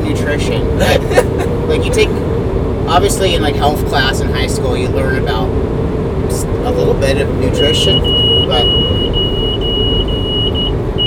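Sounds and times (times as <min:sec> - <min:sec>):
van engine and road rumble: 0:00.0 - 0:11.0
speech: 0:00.1 - 0:09.1
laughter: 0:00.7 - 0:02.2
van speed alarm high-pitched electronic tone: 0:07.6 - 0:11.0.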